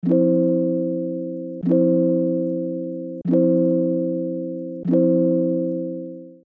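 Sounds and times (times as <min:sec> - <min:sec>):
soft alarm: 0:00.0 - 0:06.4.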